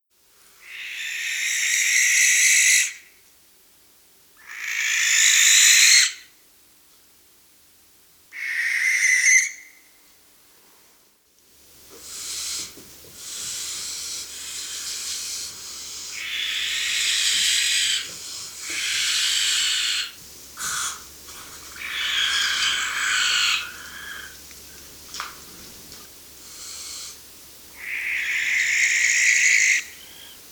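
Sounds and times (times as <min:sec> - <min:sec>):
barn owl calling: 0:00.6 - 0:03.1, 0:04.4 - 0:06.3, 0:08.3 - 0:10.0, 0:13.3 - 0:24.4, 0:27.7 - 0:30.5.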